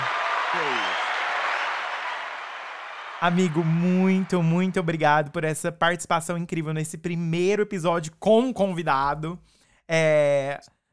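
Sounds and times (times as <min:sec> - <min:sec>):
steady dense applause: 0:00.0 - 0:04.9
speech: 0:00.5 - 0:00.9, 0:03.2 - 0:10.8.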